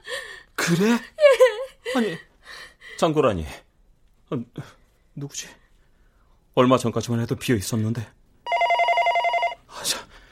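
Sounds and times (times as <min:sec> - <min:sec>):
speech: 0:00.7 - 0:01.2, 0:02.0 - 0:02.3, 0:03.0 - 0:03.6, 0:04.3 - 0:05.6, 0:06.6 - 0:08.2
telephone ringing with a bright electronic trill: 0:08.5 - 0:09.6.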